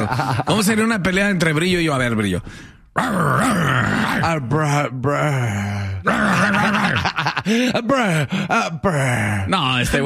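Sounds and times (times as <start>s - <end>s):
laughter: 0.0s - 0.8s, 6.2s - 8.3s
speech: 0.1s - 10.0s
person imitating a dog growling and panting: 3.0s - 4.3s, 6.0s - 7.0s.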